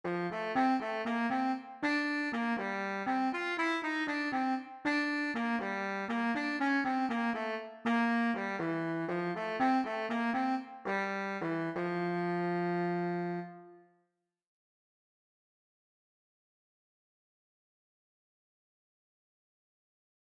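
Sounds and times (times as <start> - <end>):
baritone saxophone: 0.1 - 13.8.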